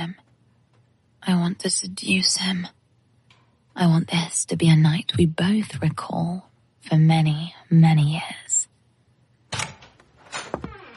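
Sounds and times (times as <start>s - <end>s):
speech: 1.2s - 2.8s, 3.8s - 8.4s
door creaking as it swings open: 9.5s - 10.9s.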